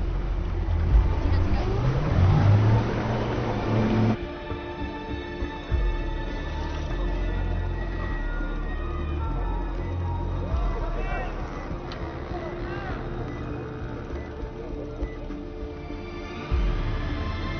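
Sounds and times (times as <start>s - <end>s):
car engine revving as it accelerates: 0.0s - 4.3s, 6.2s - 17.5s.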